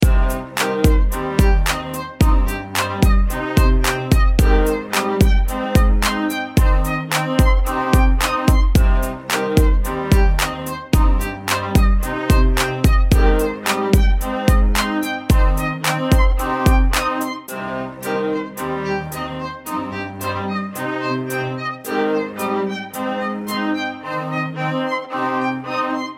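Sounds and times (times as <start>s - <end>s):
violin over a beat: 0.0s - 26.1s.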